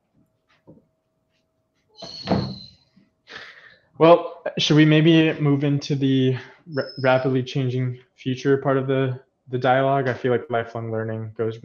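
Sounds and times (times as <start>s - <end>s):
door hinge squeal as dogs open a door: 2.0s - 2.9s
low wooden door thump: 2.2s - 2.6s
speech: 4.0s - 11.6s.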